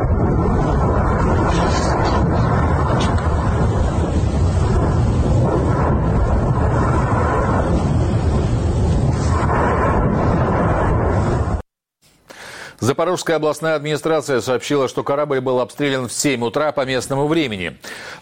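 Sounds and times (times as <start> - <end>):
explosion at a port: 0.0 - 11.6
speech: 13.0 - 18.2.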